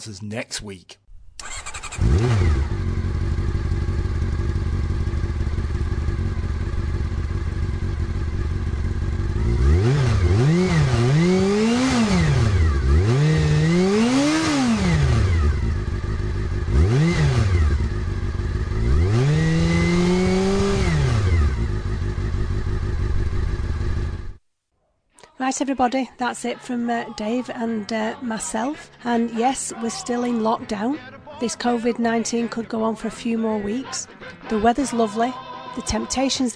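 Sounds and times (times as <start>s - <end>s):
speech: 0.0s - 1.0s, 25.6s - 36.5s
motorcycle engine starting, idling and revving: 1.1s - 24.4s.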